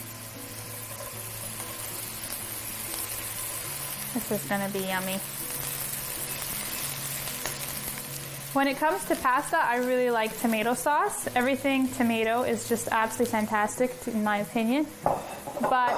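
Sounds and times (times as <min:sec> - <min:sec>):
mushrooms sizzling in hot olive oil: 0:00.0 - 0:15.9
speech: 0:04.1 - 0:05.6, 0:08.5 - 0:15.9.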